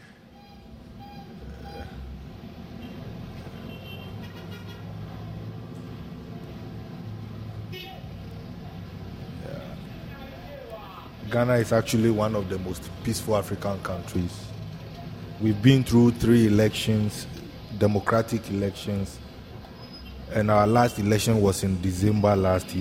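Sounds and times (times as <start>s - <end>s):
dense street traffic engine rumble in Ghana: 0.0s - 22.7s
indistinct voices chattering: 0.3s - 22.7s
car horn toots: 2.8s - 5.0s
speech: 11.3s - 14.5s, 15.4s - 19.2s, 20.4s - 22.7s.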